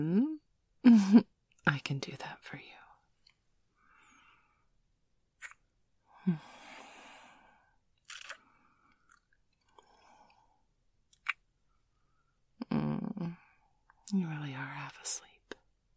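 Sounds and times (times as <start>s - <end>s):
speech: 0.0s - 2.8s, 6.3s - 6.5s, 14.1s - 15.3s
slow soft breathing: 3.7s - 4.8s, 6.1s - 7.8s, 8.4s - 10.7s.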